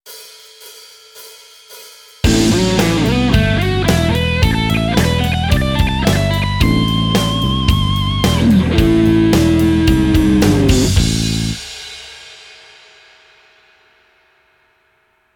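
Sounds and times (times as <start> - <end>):
slow guitar lick: 2.2 - 11.6.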